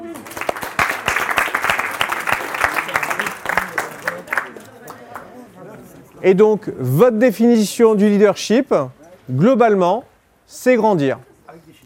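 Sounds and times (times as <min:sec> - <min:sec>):
room full of people applauding: 0:00.0 - 0:05.4
speech: 0:06.2 - 0:11.7.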